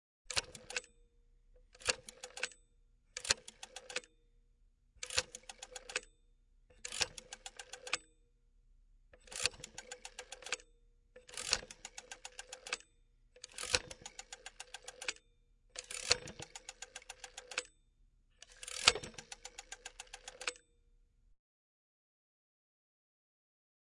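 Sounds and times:
1940s rotary phone dialing all numbers: 0:00.3 - 0:00.9, 0:01.7 - 0:02.6, 0:03.2 - 0:04.1, 0:05.0 - 0:06.0, 0:06.8 - 0:08.1, 0:09.2 - 0:10.6, 0:11.2 - 0:15.2, 0:15.8 - 0:17.7, 0:18.4 - 0:20.6.

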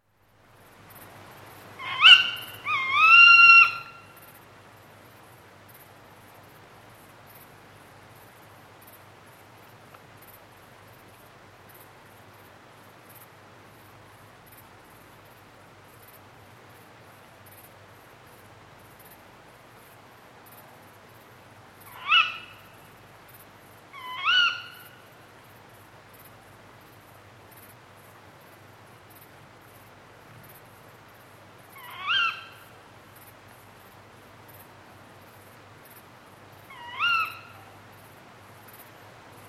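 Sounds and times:
chorus of dark bush-crickets: 0:00.0 - 0:39.4
Tawny Owl hunting calls: 0:01.8 - 0:04.3, 0:21.9 - 0:22.7, 0:23.9 - 0:25.0, 0:31.8 - 0:32.7, 0:36.7 - 0:37.8.

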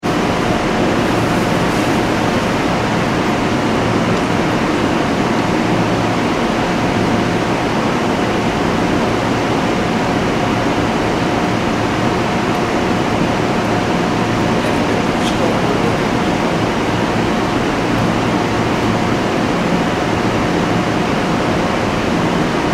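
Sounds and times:
train station platform ambience: 0:00.0 - 0:22.7.

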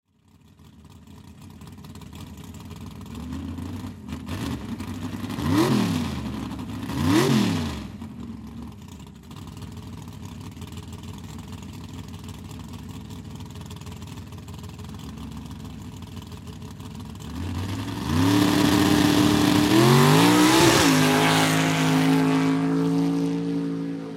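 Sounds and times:
swamp Jeep watercraft engine starting for a race: 0:00.3 - 0:24.1.

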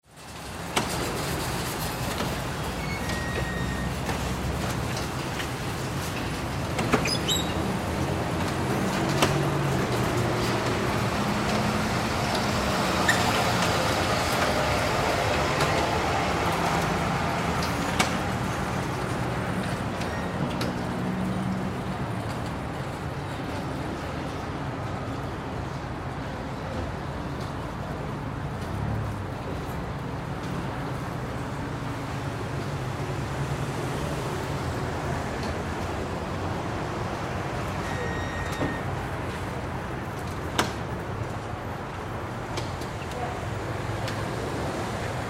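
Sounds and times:
traffic by a supermarket parking lot: 0:00.0 - 0:45.2
supermarket shopping carts in a store parking lot: 0:00.1 - 0:23.7.

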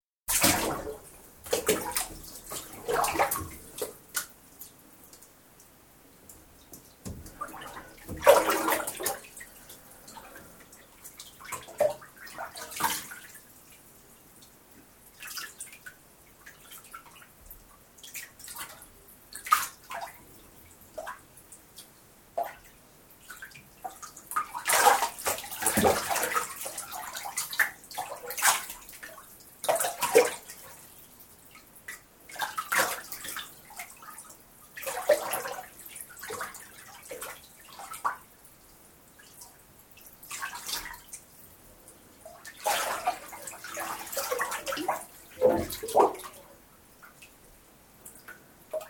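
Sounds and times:
person having a bath in water: 0:00.3 - 0:05.1, 0:07.0 - 0:13.4, 0:24.0 - 0:30.9, 0:32.3 - 0:38.2, 0:42.2 - 0:47.2.

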